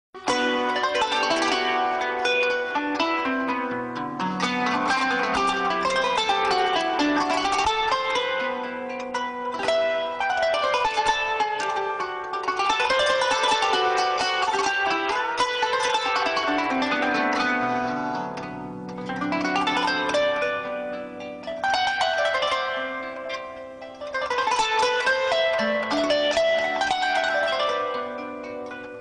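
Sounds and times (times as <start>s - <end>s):
kanun piano ringtone: 0.2s - 29.0s.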